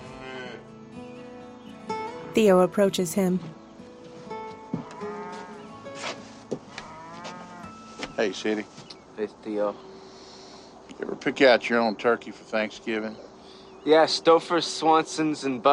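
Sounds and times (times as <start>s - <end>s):
cattle mooing in pens: 0.0s - 0.7s, 4.9s - 5.7s, 6.7s - 7.8s
speech: 2.4s - 3.6s, 8.2s - 9.9s, 11.0s - 15.7s.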